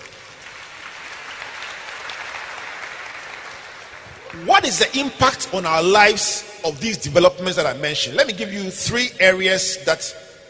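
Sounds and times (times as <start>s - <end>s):
audience applause: 0.0s - 4.9s
speech: 4.3s - 10.2s.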